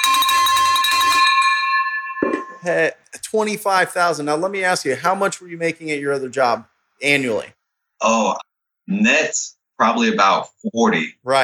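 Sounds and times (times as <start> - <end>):
big silver metal bell clanging to celebrate a property deal: 0.0 - 2.8
speech: 2.6 - 11.4.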